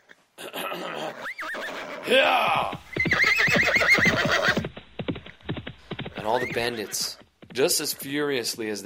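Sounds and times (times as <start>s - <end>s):
person imitating a horse whinny: 0.4s - 4.6s
speech: 0.8s - 2.8s, 6.3s - 8.8s.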